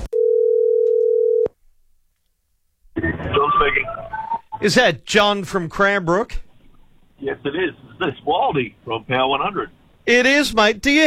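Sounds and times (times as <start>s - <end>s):
telephone call ringing tone: 0.2s - 1.5s
speech: 3.6s - 6.4s, 7.2s - 11.0s.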